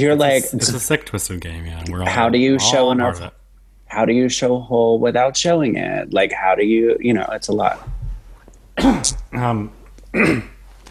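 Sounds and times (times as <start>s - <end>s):
speech: 0.0s - 8.0s, 8.8s - 10.5s
person coughing: 8.8s - 9.4s, 10.1s - 10.6s
throat clearing: 8.8s - 9.5s, 10.1s - 10.6s.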